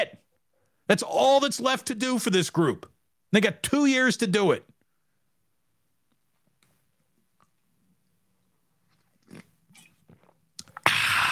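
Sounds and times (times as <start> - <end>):
speech: 0.0 - 0.2, 0.9 - 4.7
person slurping and gulping a drink: 7.3 - 11.3.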